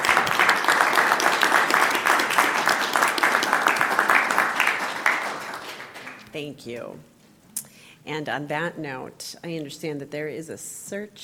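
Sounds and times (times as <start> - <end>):
group applauding a doctor's retirement: 0.0 - 6.4
speech: 6.4 - 7.1, 8.0 - 11.2.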